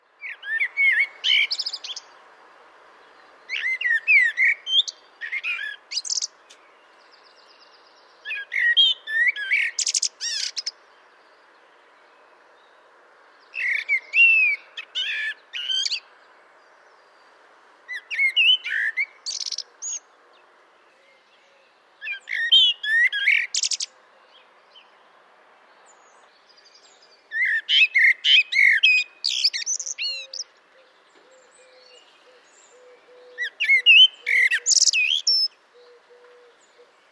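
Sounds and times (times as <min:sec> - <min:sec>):
common blackbird singing: 0:00.2 - 0:02.1, 0:03.5 - 0:11.4, 0:13.4 - 0:16.1, 0:17.9 - 0:20.1, 0:20.8 - 0:25.0, 0:25.9 - 0:37.1.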